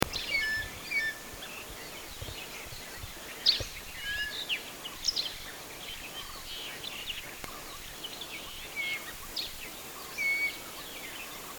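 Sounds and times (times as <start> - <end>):
crested eagle calling: 0.0 - 11.5.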